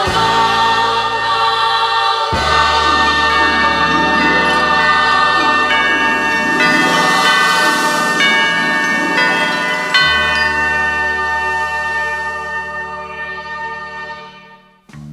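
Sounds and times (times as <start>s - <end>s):
clock bells chiming on an old tower: 0.0s - 14.7s
musical accompaniment with sustained low notes: 14.8s - 15.1s.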